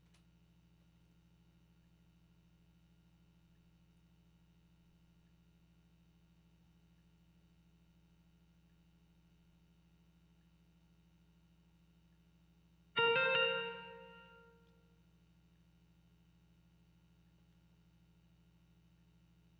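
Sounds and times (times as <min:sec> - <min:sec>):
guitar texture: 0:13.0 - 0:14.5.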